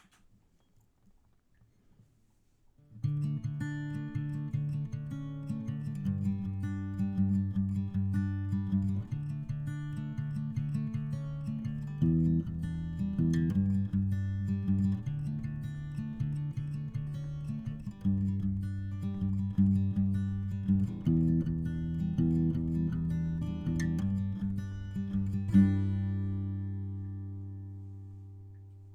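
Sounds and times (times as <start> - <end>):
strummed instrument: 3.0 - 28.9
bass: 6.0 - 28.9.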